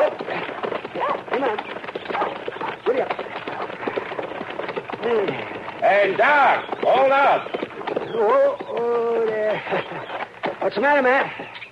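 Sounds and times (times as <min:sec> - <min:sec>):
dog barking: 0:00.0 - 0:01.5, 0:02.1 - 0:02.8, 0:03.5 - 0:03.7
horse hooves clip-clopping: 0:00.0 - 0:11.6
speech: 0:05.1 - 0:07.6, 0:08.2 - 0:09.9, 0:10.6 - 0:11.5.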